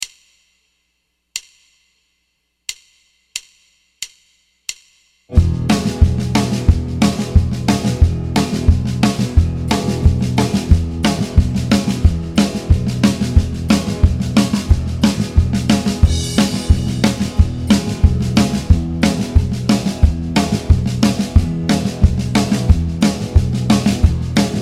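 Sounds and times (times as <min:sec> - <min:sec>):
guitar vamp in E: 0:05.3 - 0:24.6.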